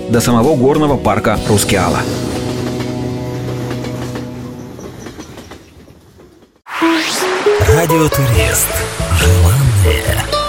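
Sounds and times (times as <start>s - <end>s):
speech: 0.1s - 2.4s, 7.8s - 10.3s
train running on rails with steady rumble: 1.4s - 10.1s
rhythmic clickety-clack of train wheels: 1.9s - 6.7s
brief bright sound: 6.7s - 8.4s.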